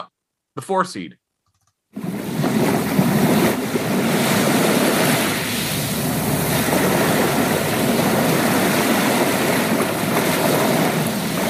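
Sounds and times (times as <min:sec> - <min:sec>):
speech: 0:00.0 - 0:01.2
ocean waves and surf rushing: 0:02.0 - 0:11.4
wind noise buffeting the microphone: 0:02.0 - 0:11.4.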